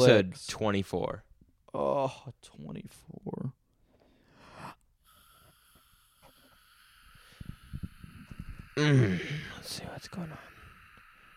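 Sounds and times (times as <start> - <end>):
speech: 0.0 - 3.6, 8.8 - 10.5
soft breathing: 3.8 - 11.3
person yawning: 8.7 - 9.7.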